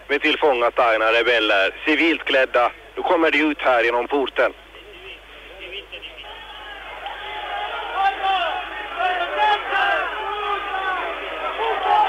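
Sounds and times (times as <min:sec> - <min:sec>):
speech: 0:00.1 - 0:04.6
crowd shouting insults at captured rebels: 0:06.0 - 0:12.0.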